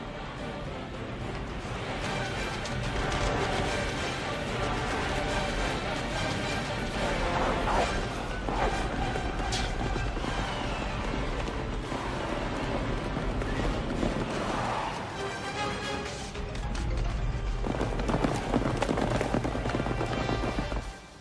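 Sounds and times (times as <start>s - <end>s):
herd of animals stampeding with pounding hooves through a gorge: 0.0s - 21.1s.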